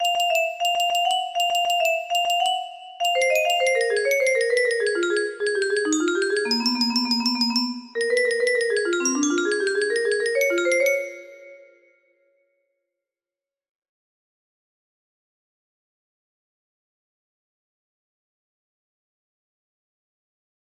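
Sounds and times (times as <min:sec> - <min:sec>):
music box melody: 0:00.0 - 0:11.9.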